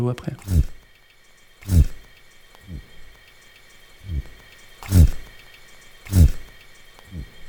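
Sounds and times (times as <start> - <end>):
speech: 0.0 - 0.8, 1.6 - 2.0, 2.7 - 2.9
faint steady hiss: 0.0 - 7.4
lobster buzzing underwater by carapace vibration: 0.4 - 3.2, 4.2 - 7.3.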